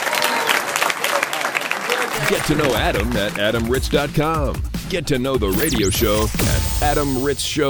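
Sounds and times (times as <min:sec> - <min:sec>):
crowd applauding: 0:00.0 - 0:03.2
speech: 0:02.2 - 0:07.6.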